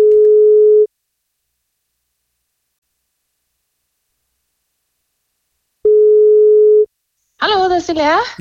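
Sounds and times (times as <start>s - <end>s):
telephone ringback tone from an outgoing call: 0.0s - 0.9s, 5.9s - 6.9s
speech: 7.9s - 8.3s.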